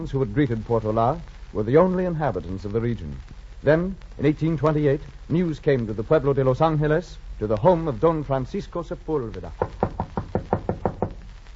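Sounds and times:
speech: 0.0s - 9.8s
quick firm knocks on a wooden door: 9.6s - 11.2s.

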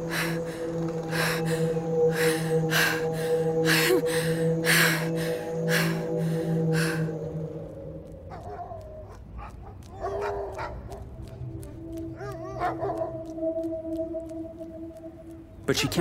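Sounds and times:
dogs howling: 0.0s - 14.0s
dogs barking and yipping: 8.3s - 13.3s
speech: 15.7s - 16.0s.

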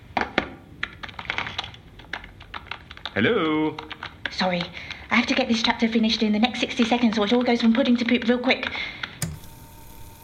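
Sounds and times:
fingers typing on a laptop keyboard while walking: 0.8s - 5.6s, 6.6s - 9.1s
speech: 3.2s - 9.0s.

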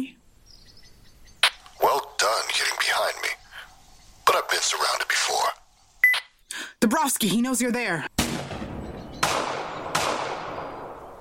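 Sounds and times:
low noise: 0.0s - 11.1s
speech: 6.8s - 8.1s
gunshots from a powerful rifle: 8.2s - 11.1s.

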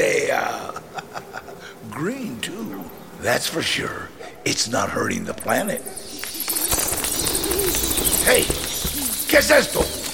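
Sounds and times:
steady airy hiss: 0.0s - 10.1s
laughter: 0.4s - 1.8s
speech: 3.2s - 6.0s, 8.2s - 8.6s, 9.3s - 10.0s
owl hooting: 5.7s - 10.1s.

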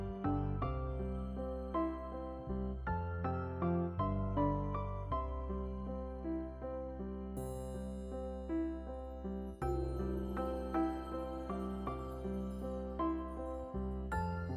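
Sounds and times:
gentle melody with soft plucked or struck tones: 0.0s - 14.5s
faint bright shimmer: 7.4s - 14.5s.

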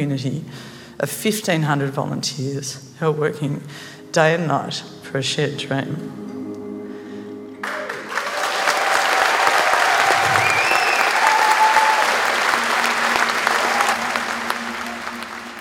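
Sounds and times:
speech: 0.0s - 6.3s
large crowd applauding: 7.6s - 15.5s.

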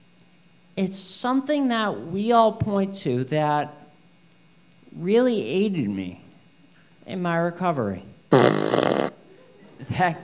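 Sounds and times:
speech: 0.8s - 3.8s, 5.0s - 6.2s, 7.1s - 8.6s, 10.0s - 10.2s
fart machine toy raspy flatulent blast: 8.3s - 9.2s.

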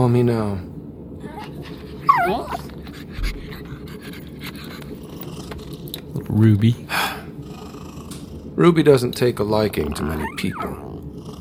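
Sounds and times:
speech: 0.0s - 2.7s, 6.3s - 7.0s, 8.6s - 10.9s
low hum: 0.0s - 11.3s
pet dog whimpering: 1.2s - 4.6s, 9.9s - 11.1s.

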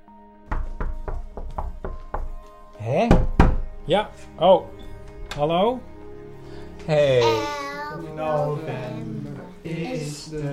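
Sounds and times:
children knocking on a door: 0.5s - 2.4s, 3.1s - 3.8s
speech: 2.8s - 3.3s, 3.9s - 4.8s, 5.4s - 5.9s, 6.9s - 9.1s, 9.7s - 10.5s.

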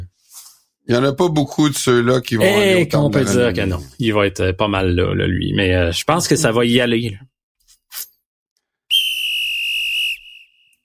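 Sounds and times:
speech: 0.9s - 7.3s
loud shrill whistle blast: 8.9s - 10.8s.

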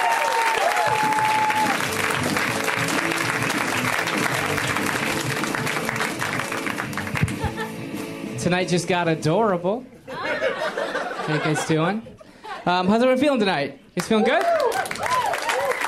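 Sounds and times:
large audience in Los Angeles applauding a comedian: 0.0s - 7.5s, 14.2s - 15.8s
laughter: 7.1s - 7.8s, 10.1s - 12.7s
speech: 8.4s - 10.6s, 11.3s - 14.6s.

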